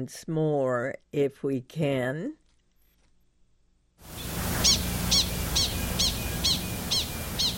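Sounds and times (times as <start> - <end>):
speech: 0.0 - 2.4
low rumbling outdoor background: 4.1 - 7.5
animal alarm call of sharp high chirps signaling a coyote: 4.2 - 7.5.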